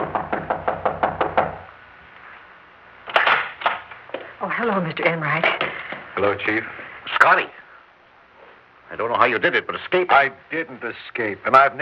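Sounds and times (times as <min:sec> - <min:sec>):
knocking on a wooden door: 0:00.0 - 0:01.7
speech: 0:04.6 - 0:07.6, 0:09.0 - 0:11.8.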